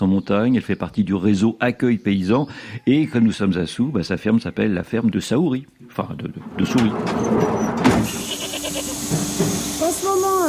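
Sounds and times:
speech: 0:00.2 - 0:08.4
low barn noise: 0:03.3 - 0:10.4
goat bleating on a farm during milking: 0:08.1 - 0:09.2.

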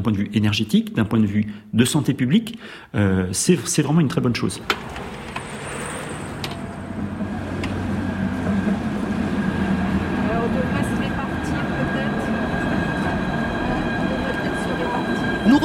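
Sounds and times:
speech: 0:00.0 - 0:05.1
rolling rail noise: 0:04.3 - 0:15.6
tram at a station platform in Brest humming and rumbling: 0:04.6 - 0:15.6
steady electric whine of a tram: 0:04.8 - 0:15.6.

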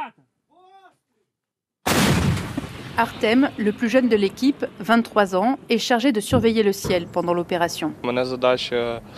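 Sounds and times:
person shouting a brief call: 0:00.0 - 0:01.0
artillery cannon firing: 0:01.8 - 0:03.8
speech: 0:03.0 - 0:09.1.

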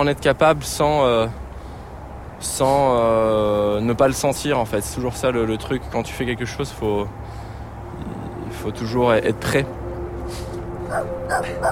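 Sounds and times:
speech: 0:00.0 - 0:01.4, 0:02.4 - 0:07.4, 0:08.6 - 0:11.7
dog barking in short sharp yaps: 0:10.9 - 0:11.7.

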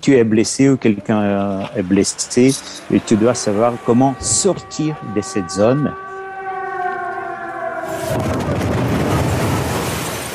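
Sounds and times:
speech: 0:00.0 - 0:06.1, 0:07.9 - 0:08.7
heavy sustained rumbling roar: 0:01.6 - 0:10.1
steady siren tone: 0:02.8 - 0:10.1
explosion from bombing of an administration building: 0:07.9 - 0:10.3.

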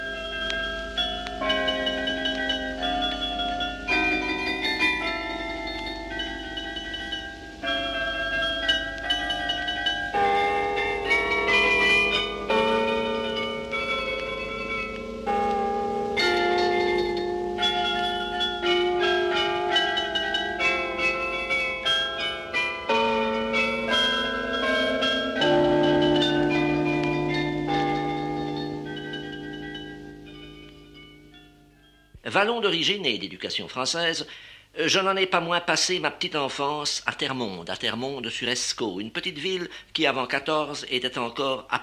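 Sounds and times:
carillon bells playing a melody from a belfry: 0:00.0 - 0:33.2
speech: 0:32.4 - 0:41.8.

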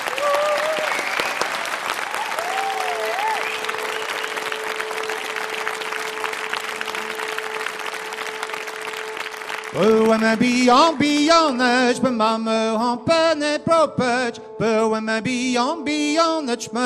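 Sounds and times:
crowd applauding: 0:00.0 - 0:11.9
whistle-like rise: 0:00.4 - 0:01.6, 0:02.2 - 0:05.4
speech: 0:09.8 - 0:16.8.

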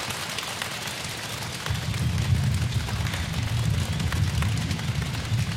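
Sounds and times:
many feet drumming on a wooden stage in a church imitating rain: 0:00.1 - 0:05.5.

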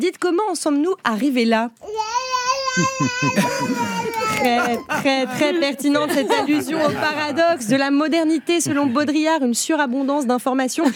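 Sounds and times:
speech: 0:00.0 - 0:02.2, 0:02.8 - 0:10.9
baby crying and babbling: 0:01.8 - 0:05.3
laughter: 0:02.8 - 0:09.4.

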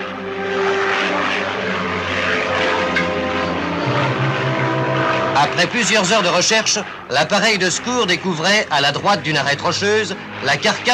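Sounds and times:
propeller airplane droning overhead: 0:00.0 - 0:10.9
speech: 0:05.4 - 0:10.9.

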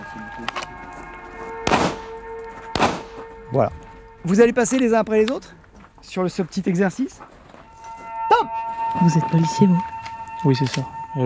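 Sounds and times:
gunshots in a police shooting exercise: 0:01.6 - 0:03.3
speech: 0:03.5 - 0:07.3, 0:08.4 - 0:11.2.

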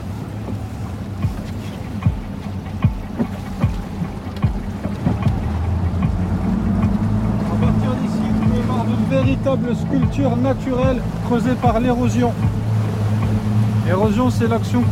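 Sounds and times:
motorboat engine droning as the boat leaves the port: 0:00.0 - 0:14.9
wind buffeting the microphone: 0:00.0 - 0:14.9
knocks and thumps: 0:01.2 - 0:07.3, 0:12.4 - 0:12.6
speech: 0:09.4 - 0:12.7, 0:13.9 - 0:14.9.

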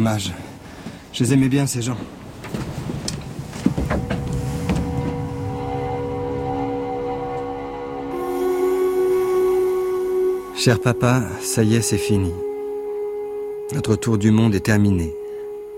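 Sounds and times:
speech: 0:00.0 - 0:00.5, 0:01.2 - 0:02.2, 0:10.6 - 0:12.5, 0:13.7 - 0:15.2
boat engine droning: 0:02.1 - 0:15.7.

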